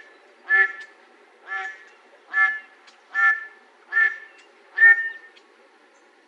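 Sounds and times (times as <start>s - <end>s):
mallard quacking: 0.5s - 5.2s.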